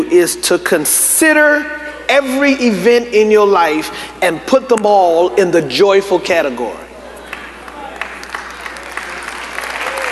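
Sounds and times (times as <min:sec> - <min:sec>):
speech: 0:00.0 - 0:06.8
audience clapping: 0:07.2 - 0:10.1.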